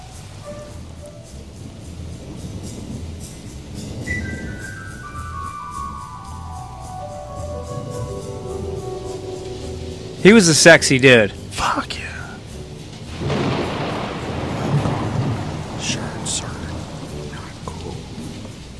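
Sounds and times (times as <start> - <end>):
constant rain-like wash: 0.0 - 18.7
soft descending tonal glide: 0.0 - 18.7
steady light percussion: 0.0 - 18.7
speech: 10.2 - 12.0
breathy hissing whispered vocal track: 11.5 - 12.5, 15.8 - 18.4.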